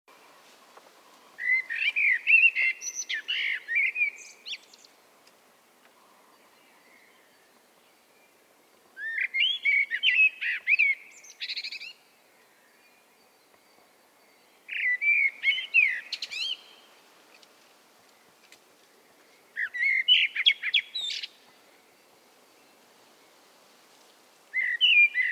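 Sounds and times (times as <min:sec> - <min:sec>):
common blackbird Turdus merula singing whistled phrases: 0:01.4 - 0:04.9, 0:09.0 - 0:16.9, 0:19.5 - 0:22.8, 0:24.5 - 0:25.3.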